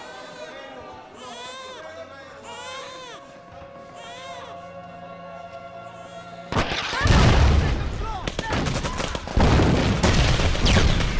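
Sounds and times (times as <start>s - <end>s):
voices: 0.0s - 8.6s
soldiers' guns firing in a war film battle scene: 6.5s - 11.1s
bomb and tank explosions in a war film battle scene: 6.6s - 11.1s.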